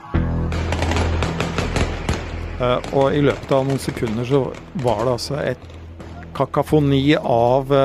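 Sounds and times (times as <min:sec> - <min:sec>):
rapid gunfire: 0:00.5 - 0:06.0
speech: 0:02.6 - 0:05.8, 0:06.4 - 0:07.8.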